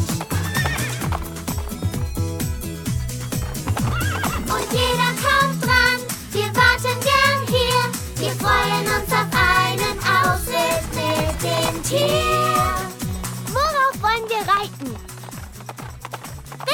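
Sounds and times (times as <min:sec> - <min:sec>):
horse hooves clip-clopping: 0:00.0 - 0:16.7
horse neighing: 0:00.2 - 0:01.5, 0:03.3 - 0:04.8.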